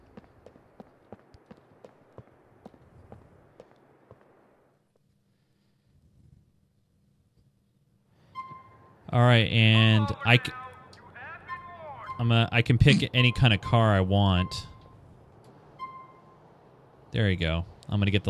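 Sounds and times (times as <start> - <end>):
footsteps of a video game character walking out of a station: 0.0 - 4.4
speech: 9.1 - 10.6, 12.2 - 14.7, 17.1 - 18.2.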